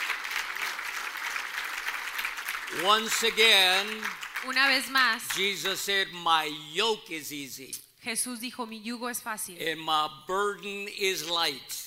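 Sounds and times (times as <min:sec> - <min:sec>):
church congregation applauding during a bilingual service: 0:00.0 - 0:06.1
speech: 0:02.7 - 0:11.8.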